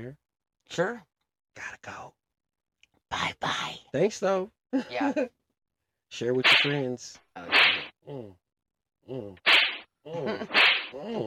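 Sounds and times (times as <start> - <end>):
speech: 0.0 - 2.2, 3.1 - 5.4, 6.1 - 8.4, 9.1 - 11.2
sharp face slaps: 6.4 - 6.8, 7.5 - 7.9, 9.5 - 9.9, 10.5 - 11.0.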